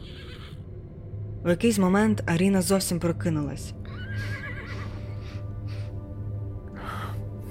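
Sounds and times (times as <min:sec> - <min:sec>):
horse whinnying with a high-pitched neigh: 0:00.0 - 0:00.6, 0:03.9 - 0:05.1
steady low hum: 0:00.0 - 0:07.4
speech: 0:01.4 - 0:04.4.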